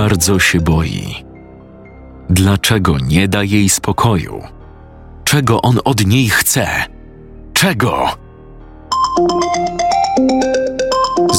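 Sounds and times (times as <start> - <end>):
speech: 0.0 - 1.3, 2.3 - 4.6, 5.3 - 6.9, 7.6 - 8.2, 9.2 - 10.6
phone melodic electronic ringtone: 8.9 - 11.3.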